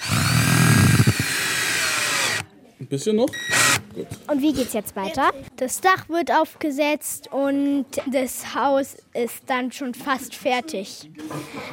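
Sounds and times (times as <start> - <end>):
power drill drilling and driving screws into wooden boards: 0.0 - 2.5, 3.4 - 3.9
speech: 2.9 - 11.7.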